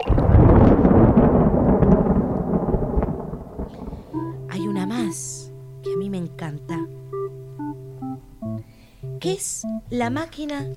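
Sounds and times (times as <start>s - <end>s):
heavy rain pouring: 0.0s - 5.8s
deep rumbling roll of thunder: 0.0s - 7.1s
speech: 9.3s - 10.7s.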